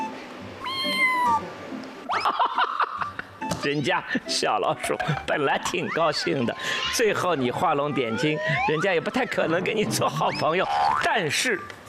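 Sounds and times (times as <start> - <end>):
cat meowing: 0.6 - 1.5
laughter: 2.1 - 10.8
speech: 3.6 - 11.8.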